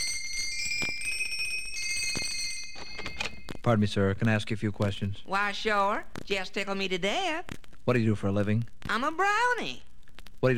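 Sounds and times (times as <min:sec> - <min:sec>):
doorbell at a workshop chiming: 0:00.0 - 0:03.6
speech: 0:03.7 - 0:10.5.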